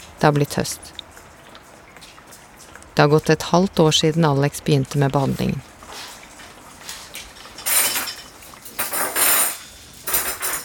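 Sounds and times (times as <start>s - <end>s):
autumn rain dripping from a house roof: 0.0s - 10.1s
speech: 0.2s - 1.0s, 3.0s - 5.7s
pots and cutlery clattering while cooking dinner in a kitchen: 7.4s - 10.6s.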